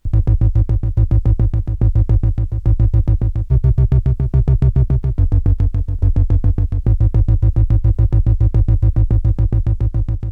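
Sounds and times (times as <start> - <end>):
bass: 0.0 - 10.3.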